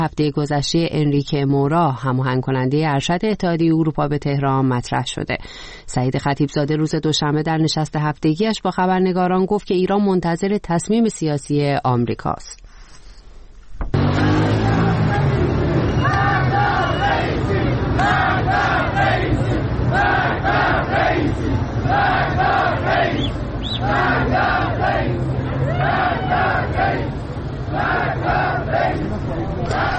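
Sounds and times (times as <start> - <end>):
speech: 0.0 - 12.6
crowd chanting at street protests in Iran: 14.0 - 29.9.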